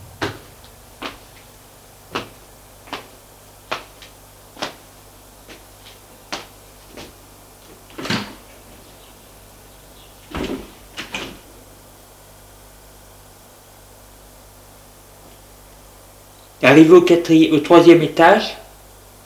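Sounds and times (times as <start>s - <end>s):
elevator mechanical hum during a ride: 0.0s - 19.2s
speech: 16.6s - 18.6s.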